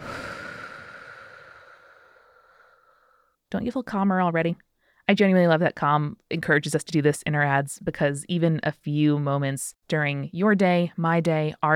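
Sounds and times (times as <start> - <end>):
slow breath out through the mouth during a calming breathing exercise: 0.0 - 3.4
speech: 3.5 - 11.7.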